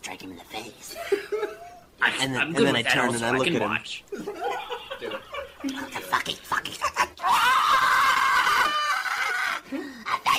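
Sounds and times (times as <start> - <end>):
speech: 2.0 - 4.3
laughter: 4.1 - 9.9
person vocally imitating a loud drawn-out scream: 7.2 - 10.3.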